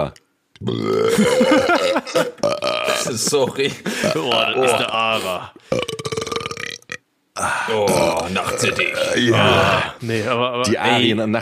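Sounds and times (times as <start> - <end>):
speech: 0.0 - 6.1, 7.4 - 11.4
burp: 0.6 - 3.2, 5.7 - 7.0, 7.7 - 10.0
raspy belch: 0.6 - 3.2, 5.7 - 7.0, 7.7 - 10.0
laughter: 1.2 - 5.3.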